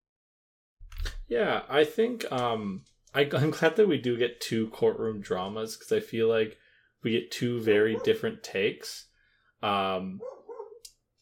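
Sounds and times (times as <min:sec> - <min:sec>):
speech: 0:01.3 - 0:10.4
dog waiting to be let in barking: 0:07.9 - 0:08.2, 0:10.2 - 0:10.8.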